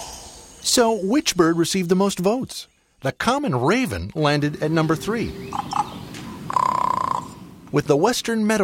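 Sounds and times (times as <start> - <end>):
speech: 0.8 - 5.8, 7.7 - 8.6
Montezuma Oropendola song, liquid gurgling cascade: 3.1 - 7.4.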